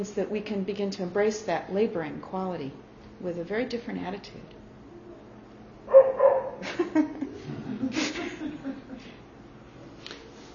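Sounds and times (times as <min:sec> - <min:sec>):
speech: 0:00.0 - 0:04.6
dog barking: 0:05.9 - 0:06.6
laughter: 0:06.6 - 0:09.2.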